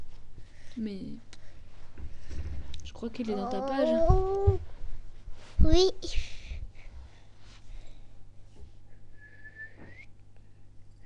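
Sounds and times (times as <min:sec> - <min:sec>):
speech: 0:00.8 - 0:01.4, 0:02.9 - 0:04.7, 0:05.6 - 0:06.3
child's breathy airy whistling attempts: 0:09.2 - 0:10.1.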